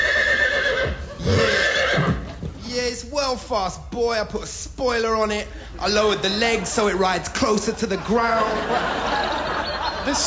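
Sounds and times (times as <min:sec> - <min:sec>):
horse neighing: 0:00.0 - 0:02.5
speech: 0:01.3 - 0:01.5, 0:03.0 - 0:09.4, 0:10.0 - 0:10.2
laughter: 0:05.5 - 0:10.2.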